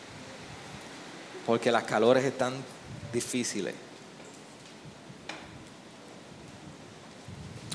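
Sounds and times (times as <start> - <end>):
steady rain hissing: 0.0 - 7.7
speech: 1.5 - 3.9.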